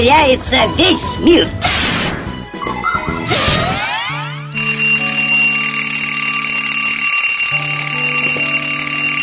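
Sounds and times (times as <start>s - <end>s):
speech: 0.0s - 2.2s
alarm clock ringing: 2.6s - 9.2s.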